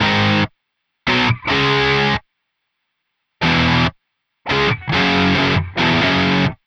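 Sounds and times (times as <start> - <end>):
distorted guitar at 140 BPM in G sharp minor: 0.0 - 0.5, 1.1 - 2.2, 3.4 - 6.6.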